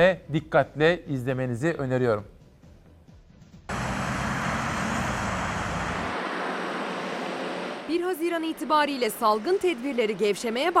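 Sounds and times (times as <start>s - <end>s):
speech: 0.0s - 2.4s, 8.2s - 10.7s
morning road traffic in a big city: 3.7s - 10.7s.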